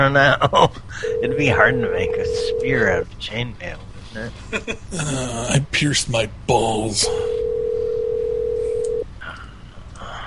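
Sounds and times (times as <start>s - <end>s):
speech: 0.0s - 7.4s
phone ringback tone from a call to a cell phone: 1.0s - 2.9s, 7.2s - 9.0s.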